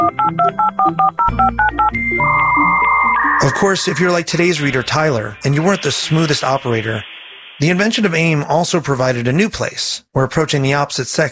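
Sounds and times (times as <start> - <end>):
touch-tone beeps of a desktop computer dialing over a home phone line: 0.1 - 7.9
speech: 0.5 - 2.5, 3.5 - 11.3
steady phone line hum: 2.0 - 9.2.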